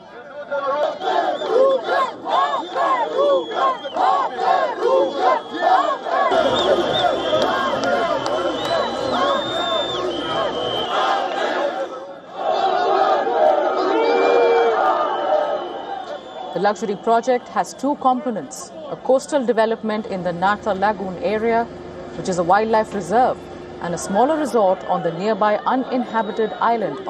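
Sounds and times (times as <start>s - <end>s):
large crowd of protesters shouting and yelling: 0.0s - 20.9s, 23.9s - 27.0s
high whistle-like tones: 6.4s - 11.2s, 15.2s - 17.2s
speech: 16.6s - 27.0s.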